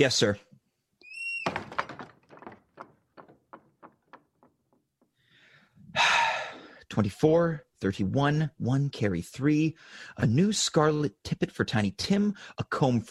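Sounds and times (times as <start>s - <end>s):
speech: 0.0s - 0.5s, 7.0s - 13.0s
door swinging shut: 1.0s - 4.8s
light rattling knocks: 1.4s - 5.2s
breathy gasping vocal sounds: 5.2s - 6.9s, 9.8s - 10.2s.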